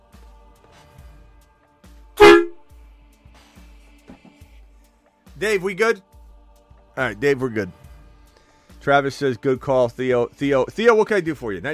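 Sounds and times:
brassy horn toot sound effect: 2.2 - 2.7
speech: 5.4 - 6.1, 7.0 - 7.8, 8.8 - 11.7.

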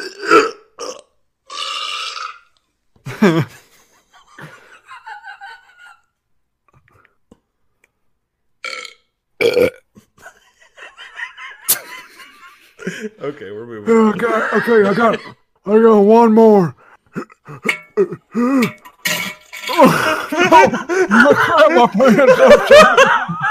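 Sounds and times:
people burping in a burping contest: 0.0 - 3.5, 8.6 - 10.1, 17.0 - 21.6
people snickering and laughing: 3.1 - 6.0, 10.2 - 13.2, 13.9 - 15.4, 19.7 - 23.4
speech: 3.2 - 3.6, 13.3 - 16.8, 18.0 - 18.8, 19.8 - 23.4.

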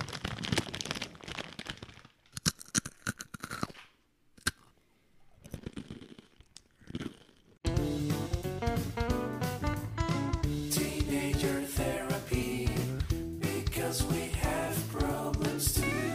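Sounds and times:
plastic bag being scrunched up, crinkling and crunching: 0.0 - 3.1
music: 7.6 - 16.1.

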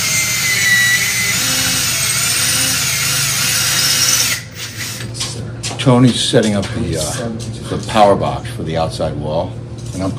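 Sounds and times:
power drill boring pilot holes into a wall stud: 0.0 - 5.1
speech: 5.8 - 10.1.

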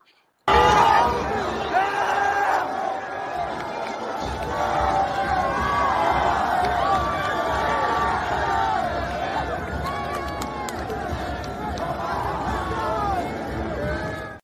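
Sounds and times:
large arena crowd cheering at a basketball game after an overtime win: 0.5 - 14.4
scattered shouts and yells from a basketball crowd: 0.5 - 14.4.

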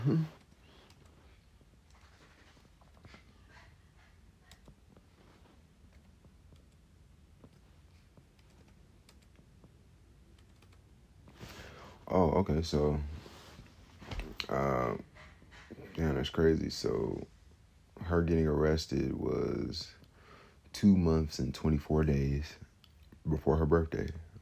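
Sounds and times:
speech: 0.0 - 0.4, 12.4 - 13.2, 16.2 - 17.4, 18.1 - 20.0, 20.8 - 22.6, 23.2 - 24.3
typing on a computer keyboard with one hand: 8.2 - 9.4, 10.3 - 10.9.

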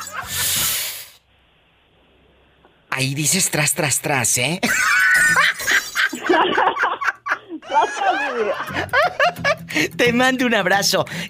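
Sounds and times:
snake hissing: 0.0 - 1.2
speech: 3.0 - 5.7, 7.7 - 11.2
laughter: 4.6 - 9.8.

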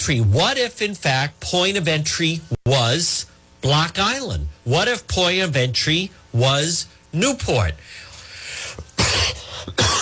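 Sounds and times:
speech: 0.0 - 8.0
person coughing: 8.8 - 10.0.

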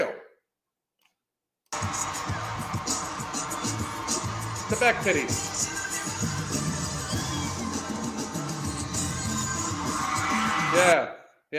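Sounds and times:
concert crowd roaring and cheering: 1.7 - 11.0
thumping steady bass music: 1.8 - 10.8
speech: 4.7 - 6.5, 10.8 - 11.5.

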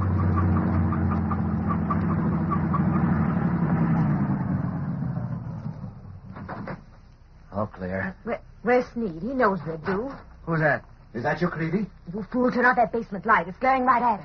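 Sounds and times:
heavy truck with no headlights driving past: 0.0 - 6.8
speech: 8.2 - 14.2.

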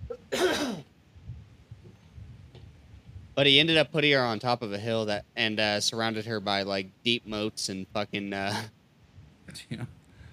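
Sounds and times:
faint low rumbles: 0.0 - 10.3
harsh throat clearing: 0.1 - 0.9
speech: 3.4 - 8.8, 9.5 - 10.0.

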